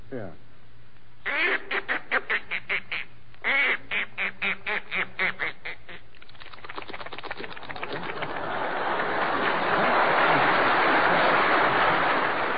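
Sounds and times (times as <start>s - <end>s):
performer's voice imitating quick rhythmic duck quacks: 1.2s - 6.1s
laughter: 7.8s - 12.5s.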